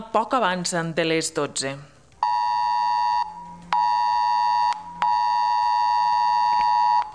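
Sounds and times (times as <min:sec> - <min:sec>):
speech: 0:00.1 - 0:02.0
civil protection weather emergency alert tone from a mobile phone: 0:02.2 - 0:07.1.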